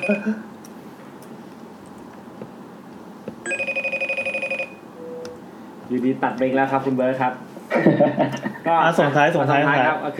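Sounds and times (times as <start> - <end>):
telephone ringing as an outgoing call is placed: 0.0 - 0.3, 3.4 - 5.4
speech: 0.0 - 0.5, 5.9 - 10.1
laughter: 7.7 - 8.7.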